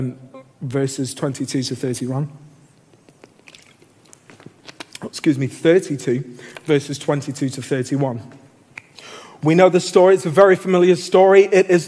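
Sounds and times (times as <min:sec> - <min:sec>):
speech: 0:00.0 - 0:02.5, 0:05.2 - 0:08.4, 0:09.4 - 0:11.8
soft wet mouth clicks: 0:02.8 - 0:05.0, 0:08.7 - 0:09.1
person sipping water: 0:02.8 - 0:05.1.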